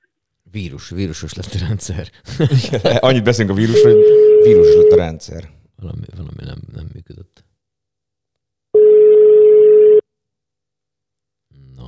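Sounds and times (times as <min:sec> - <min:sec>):
speech: 0:00.5 - 0:06.6
laughter: 0:00.9 - 0:05.4
steady telephone line tone while redialing a dropped call: 0:03.7 - 0:05.1, 0:08.8 - 0:10.0.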